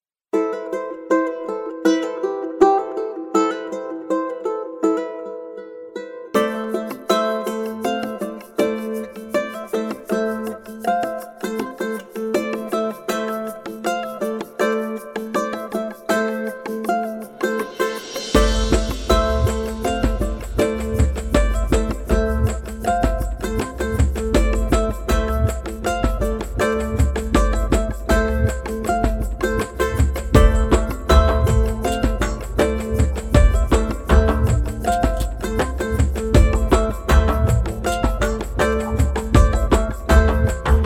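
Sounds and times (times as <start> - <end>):
ronroco string loops: 0.4 - 40.8.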